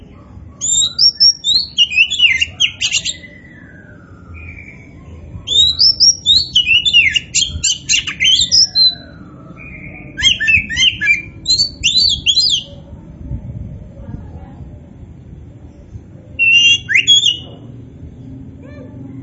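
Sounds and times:
Oriental magpie-robin of the poci variety singing vigorously: 0.6s - 12.8s, 16.4s - 17.6s.

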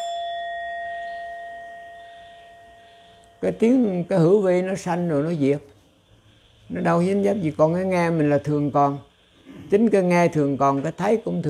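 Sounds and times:
struck bell ringing in a sustained faint tone: 0.0s - 4.5s
speech: 3.4s - 5.7s, 6.7s - 9.1s, 9.7s - 11.4s.

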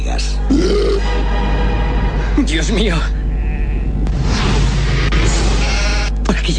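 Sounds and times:
heavy low rumbling: 0.4s - 6.3s
speech: 2.4s - 3.2s
flock of sheep bleating: 3.2s - 4.0s.

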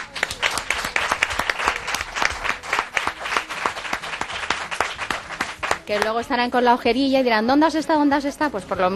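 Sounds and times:
group of people applauding: 0.0s - 6.4s
speech: 5.9s - 8.9s.

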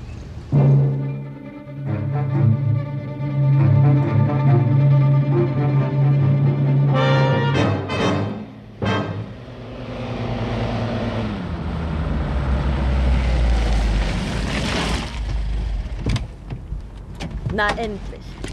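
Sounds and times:
car engine humming while driving on city streets: 0.0s - 17.2s
road noise: 0.0s - 18.5s
speech: 17.6s - 18.1s.

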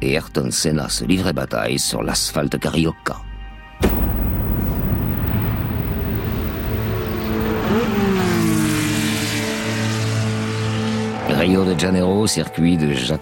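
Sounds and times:
speech: 0.0s - 4.0s, 11.4s - 13.2s
Formula 1 race cars roaring off the start at the Jacarepaguá circuit in Rio de Janeiro in 1988: 5.2s - 13.0s.

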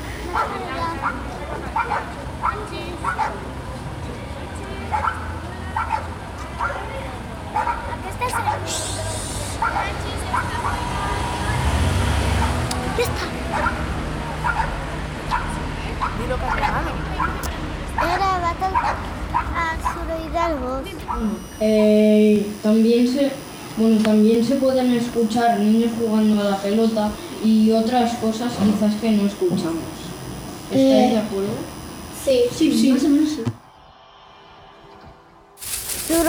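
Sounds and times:
murmur: 0.0s - 21.2s, 35.6s - 36.2s
many dogs barking around a neighbourhood: 0.3s - 3.6s, 4.9s - 8.8s, 9.6s - 11.2s, 13.3s - 17.5s, 18.6s - 20.1s, 21.0s - 21.4s
speech: 20.5s - 30.0s, 30.7s - 33.6s.

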